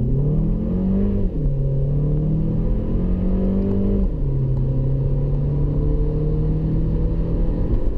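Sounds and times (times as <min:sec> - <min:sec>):
Italian car front-wheel-drive 1.4 turbo engine accelerating with 6-speed dual-clutch automatic: 0:00.0 - 0:07.9
low road rumble: 0:00.0 - 0:07.9.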